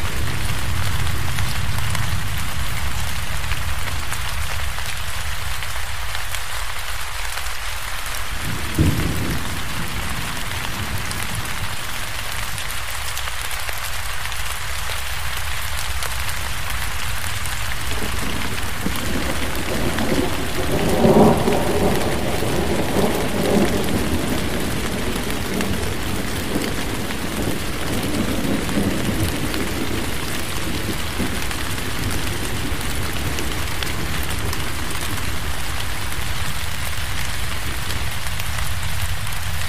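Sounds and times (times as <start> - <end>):
dense rain hissing: 0.0 - 39.6
thunder: 8.4 - 12.6, 17.8 - 36.8.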